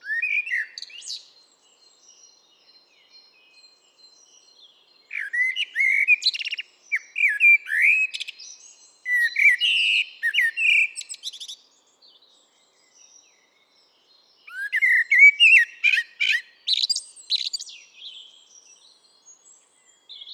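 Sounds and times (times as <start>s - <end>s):
common blackbird Turdus merula whistled song: 0.0s - 1.4s, 5.1s - 11.6s, 14.3s - 20.3s.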